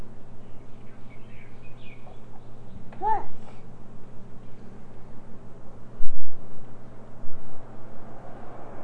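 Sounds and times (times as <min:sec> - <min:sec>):
steady low hum: 0:00.0 - 0:08.7
faint birds chirping in short high calls: 0:00.4 - 0:03.6.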